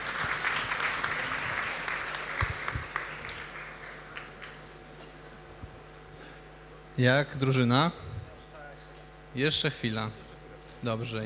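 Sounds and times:
audience applause after a talk: 0:00.0 - 0:05.0
speech: 0:07.0 - 0:08.1, 0:09.3 - 0:10.2, 0:10.8 - 0:11.2.

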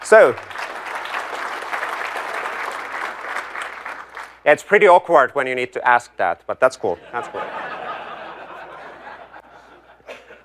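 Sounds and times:
audience clapping at a software developer presentation: 0:00.0 - 0:04.4
speech: 0:00.1 - 0:00.5, 0:04.5 - 0:07.7
laughter: 0:07.0 - 0:10.4.

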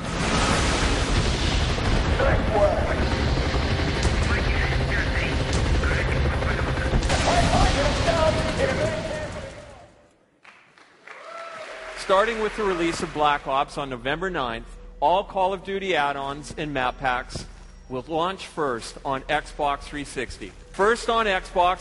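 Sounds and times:
V-32 rocket blasts in a video game: 0:00.0 - 0:03.1, 0:07.0 - 0:09.5
rapid 12mm nose cannon fire in a video game: 0:00.0 - 0:03.2, 0:06.9 - 0:09.8
rotor-like rumble: 0:00.0 - 0:09.9
indistinct voices: 0:04.0 - 0:10.0
speech: 0:12.1 - 0:21.8.

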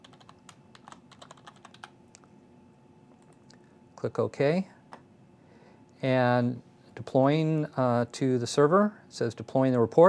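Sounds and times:
typing a password on a computer keyboard: 0:00.0 - 0:02.0
speech: 0:04.0 - 0:04.8, 0:06.0 - 0:10.0.

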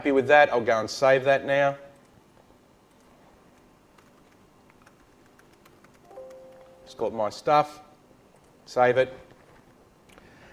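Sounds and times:
speech: 0:00.0 - 0:01.8, 0:07.0 - 0:07.8, 0:08.7 - 0:09.2
faint hum: 0:00.0 - 0:10.5
typing on a computer keyboard: 0:02.9 - 0:06.7.

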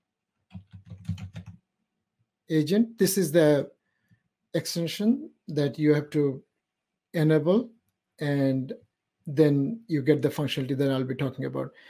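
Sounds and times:
typing on a computer keyboard: 0:00.5 - 0:01.6
speech: 0:02.5 - 0:03.8, 0:04.5 - 0:06.5, 0:07.1 - 0:11.8.

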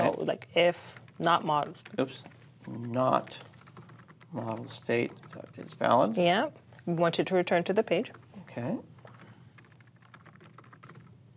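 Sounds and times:
speech: 0:00.2 - 0:03.5, 0:04.3 - 0:08.9
fast typing on a computer keyboard during coding: 0:00.9 - 0:05.9, 0:09.0 - 0:11.2.

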